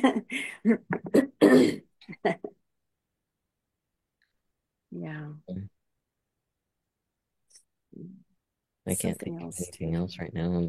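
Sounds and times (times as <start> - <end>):
speech: 0.0 - 2.4, 8.9 - 10.6
person clearing throat: 1.0 - 1.8.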